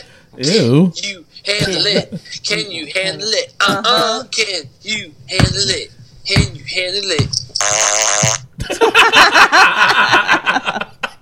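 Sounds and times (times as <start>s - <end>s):
speech: 0.3s - 10.9s
laughter: 1.6s - 2.4s, 8.6s - 11.1s
loud buzzy fart: 7.6s - 8.5s.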